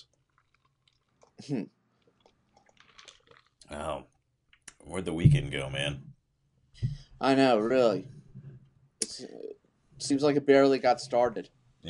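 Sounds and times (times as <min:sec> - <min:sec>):
faint mouth noises and small clicks: 0:00.0 - 0:04.9
speech: 0:01.4 - 0:01.8, 0:03.7 - 0:04.1, 0:04.8 - 0:06.1, 0:06.8 - 0:08.2, 0:09.2 - 0:11.8
slurping sip from a drink: 0:02.0 - 0:03.6.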